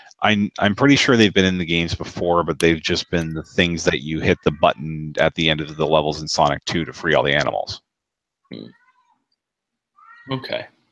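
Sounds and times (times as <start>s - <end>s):
speech: 0.2s - 7.8s, 8.5s - 8.8s, 10.3s - 10.8s
cat meowing behind a door: 10.0s - 10.6s.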